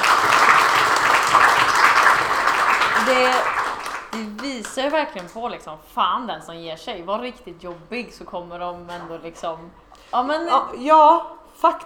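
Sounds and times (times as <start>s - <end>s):
applause from a group: 0.0s - 5.4s
speech: 3.1s - 3.5s, 4.2s - 11.8s.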